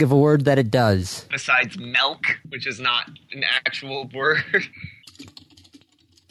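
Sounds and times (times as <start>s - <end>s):
speech: 0.0s - 5.4s
man typing a search question on a computer keyboard: 5.0s - 6.3s.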